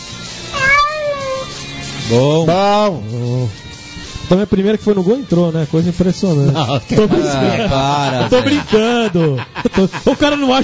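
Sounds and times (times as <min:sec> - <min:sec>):
cat meowing: 0:00.5 - 0:01.8
speech: 0:02.1 - 0:03.7, 0:04.3 - 0:10.6
laughter: 0:06.4 - 0:10.6.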